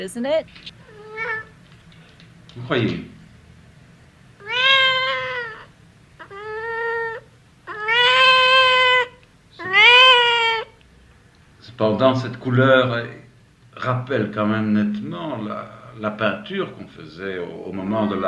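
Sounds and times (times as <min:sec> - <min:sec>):
speech: 0:00.0 - 0:00.8, 0:02.6 - 0:03.2, 0:11.8 - 0:18.2
cat meowing: 0:00.8 - 0:01.6, 0:04.4 - 0:10.8.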